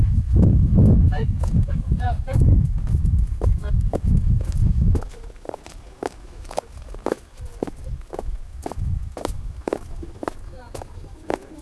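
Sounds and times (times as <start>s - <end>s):
group of people walking in a desert: 0.0s - 11.5s.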